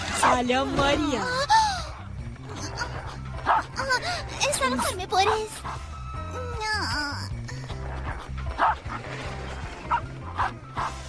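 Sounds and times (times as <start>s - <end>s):
speech: 0.2s - 1.5s, 4.6s - 7.3s
dog barking: 3.4s - 3.8s, 4.7s - 5.8s, 8.6s - 9.0s, 9.9s - 11.0s.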